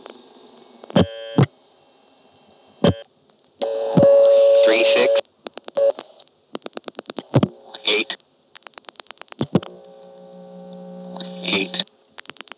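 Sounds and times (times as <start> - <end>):
steady telephone line tone humming: 1.0 - 1.5, 2.8 - 5.2, 9.6 - 11.9.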